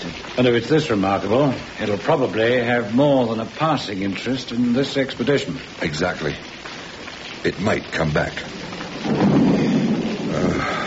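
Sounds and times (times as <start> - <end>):
steady rain: 0.0 - 10.8
speech: 0.4 - 6.6, 7.4 - 8.6
thunder rumbling: 8.2 - 10.8.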